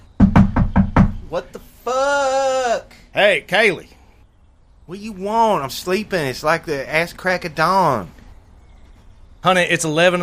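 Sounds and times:
heavy bangs on a door: 0.2 - 1.2
speech: 1.3 - 4.0, 4.9 - 8.2, 9.4 - 10.2.

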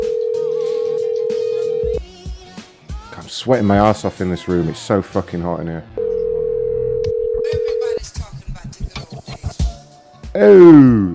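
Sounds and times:
telephone line tone while a missed call is returned: 0.0 - 2.0, 6.0 - 8.0
speech: 3.4 - 6.0, 10.4 - 11.1.

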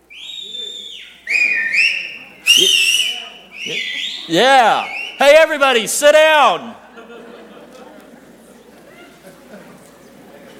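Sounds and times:
loud shrill human whistle: 0.0 - 5.2
faint room noise: 0.0 - 10.5
laughter: 3.6 - 5.0, 6.6 - 10.5
speech: 4.3 - 6.8.

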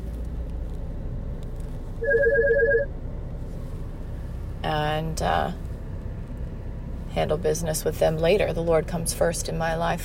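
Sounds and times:
low steady rumble: 0.0 - 10.0
phone ringing with incoming call from a doctor's office: 2.0 - 2.9
speech: 4.6 - 5.6, 7.2 - 10.0.

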